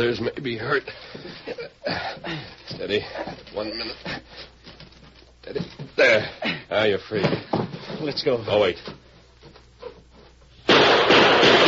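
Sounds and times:
speech: 0.0 - 4.6, 5.5 - 8.9
gunshot blowing out a window: 10.7 - 11.6.

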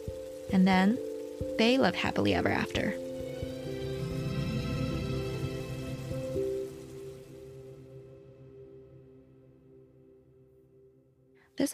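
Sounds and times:
bacon frying in a pan: 0.0 - 8.1
speech: 0.5 - 3.0.

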